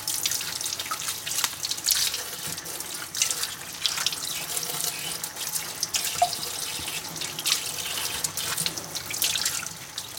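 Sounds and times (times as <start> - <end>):
water splashing on leeks being washed: 0.0 - 10.1
kitchen tap running into a sink: 1.4 - 10.1.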